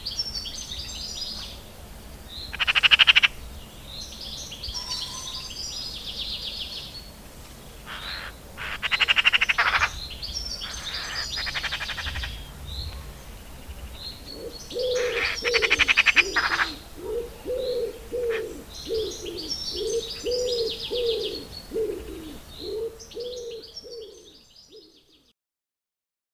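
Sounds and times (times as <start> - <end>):
high chirping songbirds: 0.0 - 25.3
Eurasian magpie rattling dry machine-gun chatters: 2.5 - 3.4, 7.8 - 24.4.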